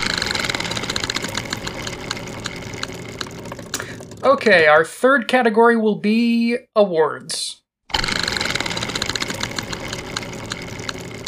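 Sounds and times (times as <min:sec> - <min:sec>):
prize wheel spinning and clicking: 0:00.0 - 0:04.8, 0:07.9 - 0:11.2
speech: 0:04.2 - 0:07.6.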